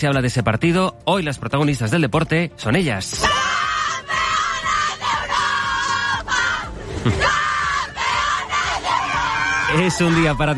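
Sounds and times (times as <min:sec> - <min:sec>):
speech: 0:00.0 - 0:03.7, 0:09.7 - 0:10.5
young women football players cheering and chanting in celebration: 0:03.2 - 0:10.5.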